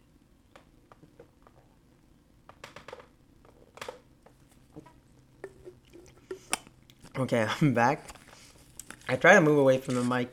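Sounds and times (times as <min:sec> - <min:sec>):
faint sipping of water away from the microphone: 0:04.8 - 0:06.7
soft swallowing: 0:04.8 - 0:06.7
speech: 0:07.2 - 0:08.2, 0:09.1 - 0:10.3.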